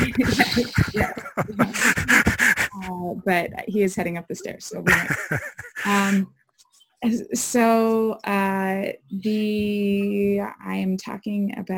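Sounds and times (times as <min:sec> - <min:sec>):
four-year-old boy panting: 0:00.0 - 0:02.8
laughter: 0:00.0 - 0:02.8, 0:04.8 - 0:06.2
speech: 0:00.2 - 0:01.9, 0:03.3 - 0:06.4, 0:07.0 - 0:11.7.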